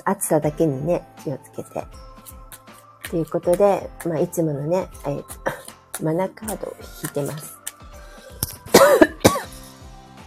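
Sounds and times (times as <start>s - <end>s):
speech: 0.0s - 2.1s, 3.1s - 7.6s
person coughing with throat irritated by spicy food and air conditioning: 8.6s - 9.7s.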